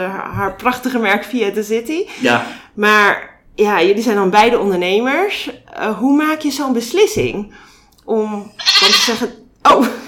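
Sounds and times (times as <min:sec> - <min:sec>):
speech: 0:00.0 - 0:10.0
phone ringtone of a goat bleating: 0:08.6 - 0:09.2.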